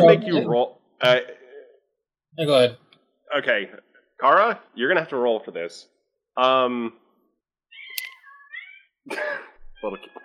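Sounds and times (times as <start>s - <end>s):
speech: 0.0s - 1.4s, 2.4s - 7.0s, 9.0s - 10.2s
cat meowing: 7.7s - 8.9s.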